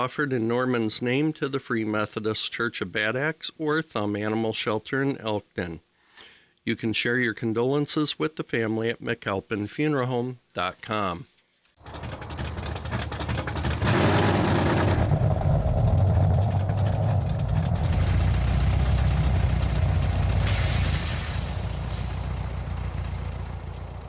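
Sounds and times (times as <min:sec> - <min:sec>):
speech: 0:00.0 - 0:05.9, 0:06.6 - 0:12.2
1990 Chevy Corvette 350 small block V8 engine idling: 0:11.8 - 0:24.0.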